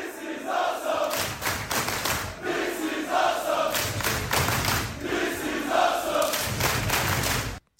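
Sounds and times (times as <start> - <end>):
crowd of fans cheering and chanting at a wrestling event: 0.0 - 7.6.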